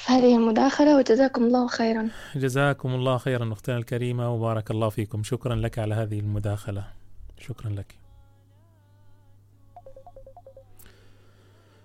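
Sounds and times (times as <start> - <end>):
speech: 0.1 - 8.0
electronic phone ringtone for an incoming call to a live broadcast: 9.8 - 10.7.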